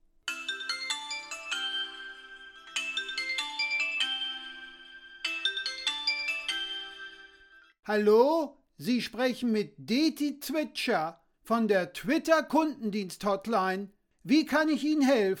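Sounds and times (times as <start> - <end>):
melodic phone ringtone: 0.3 - 7.8
speech: 7.9 - 15.3.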